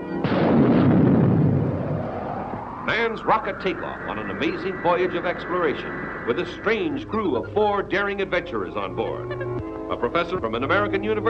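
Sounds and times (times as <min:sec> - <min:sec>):
deep roaring explosion of a planet being born in outer space: 0:00.2 - 0:08.4
speech: 0:02.9 - 0:11.2.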